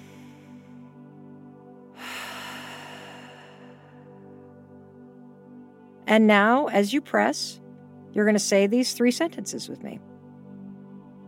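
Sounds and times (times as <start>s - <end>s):
deep breath in during a guided calming exercise: 0.0s - 1.0s, 1.9s - 4.4s
quiet steady tonal background: 0.0s - 11.2s
speech: 6.1s - 7.6s, 8.2s - 10.1s.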